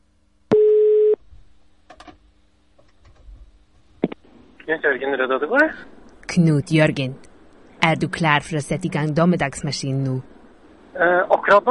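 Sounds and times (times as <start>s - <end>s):
electronic telephone tone signalling an incoming call: 0.5s - 1.2s
speech: 4.7s - 10.3s, 11.0s - 11.6s.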